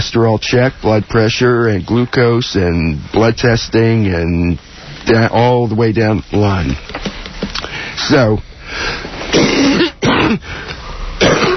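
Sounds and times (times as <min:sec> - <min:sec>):
speech: 0:00.1 - 0:11.4
person coughing into a phone: 0:09.3 - 0:10.5, 0:11.2 - 0:11.5
throat clearing: 0:09.4 - 0:10.4, 0:11.2 - 0:11.5.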